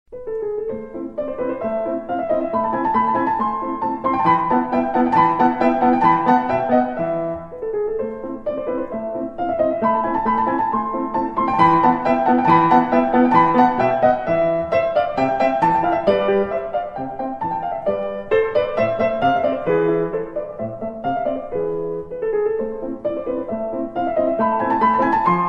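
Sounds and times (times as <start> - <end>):
long piano ringtone: 0.2 - 25.4.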